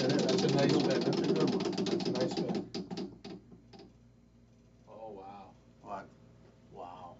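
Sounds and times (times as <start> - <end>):
spinning wheel of fate ratcheting: 0.0 - 3.9.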